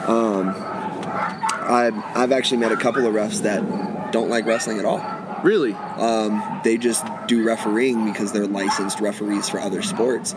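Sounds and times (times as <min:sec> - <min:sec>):
many dogs barking and yelping: 0:00.0 - 0:10.3
speech: 0:01.7 - 0:10.3.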